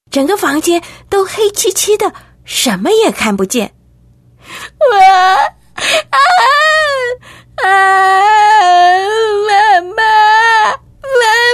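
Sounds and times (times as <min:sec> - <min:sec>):
speech: 0:00.1 - 0:03.8, 0:04.4 - 0:10.8
five-year-old girl crying in fear in a dark room: 0:04.6 - 0:11.5.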